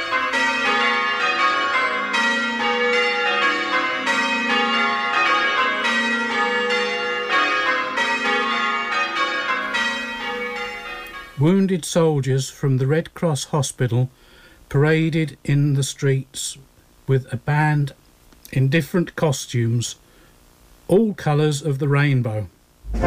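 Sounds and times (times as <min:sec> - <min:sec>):
church bells pealing: 0:00.0 - 0:11.7
speech: 0:11.4 - 0:20.0, 0:20.9 - 0:23.0.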